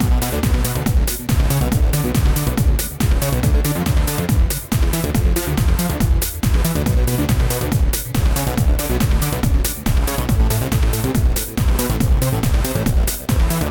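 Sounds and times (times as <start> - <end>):
random music loop: 0.0 - 13.6.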